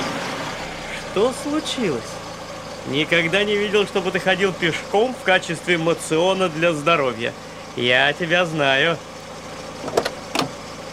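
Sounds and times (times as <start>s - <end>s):
car engine idling: 0.0s - 10.9s
speech: 1.2s - 2.2s, 2.8s - 9.1s
short mechanical clunks: 9.8s - 10.6s.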